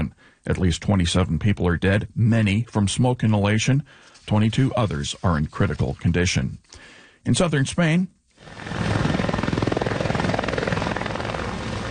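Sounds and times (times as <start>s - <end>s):
speech: 0.4s - 8.9s
helicopters ferrying firefighters from a contained blaze in Almeria province, southern Spain: 8.5s - 11.8s.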